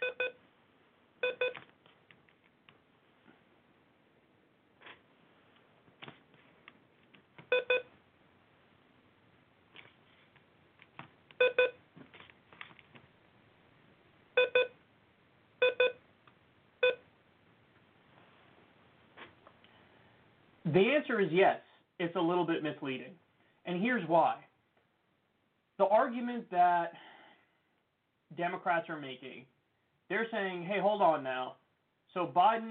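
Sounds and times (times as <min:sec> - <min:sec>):
work laptop beeping: 0:00.0 - 0:00.4, 0:01.2 - 0:01.7, 0:07.4 - 0:08.0, 0:11.3 - 0:11.9, 0:14.4 - 0:14.8, 0:15.6 - 0:16.0
speech: 0:20.7 - 0:24.4, 0:25.8 - 0:27.1, 0:28.4 - 0:29.5, 0:30.1 - 0:32.7.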